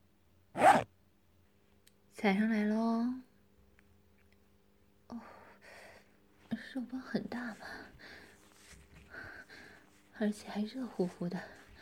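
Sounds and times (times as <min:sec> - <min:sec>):
clothing zipper being unzipped: 0:00.6 - 0:00.8
speech: 0:02.2 - 0:03.3, 0:05.1 - 0:05.3, 0:06.7 - 0:08.2, 0:10.2 - 0:11.6.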